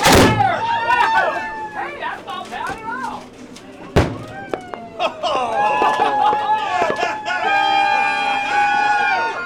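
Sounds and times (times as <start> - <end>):
firework exploding above a boat: 0.0 - 0.6, 4.0 - 4.7
excited crowd voices on a boat: 0.0 - 9.4
passengers cheering and chatting: 0.0 - 9.4
laughter: 4.2 - 9.4.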